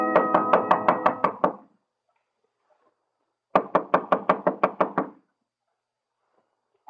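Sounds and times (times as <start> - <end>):
knocking on a door: 0.1 - 1.7, 3.5 - 5.2.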